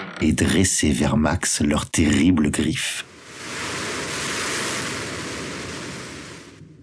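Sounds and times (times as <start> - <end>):
speech: 0.2 - 3.1
ocean surf washing as a boat sets sail: 3.0 - 6.8
rushing wind-like hiss: 3.1 - 6.8.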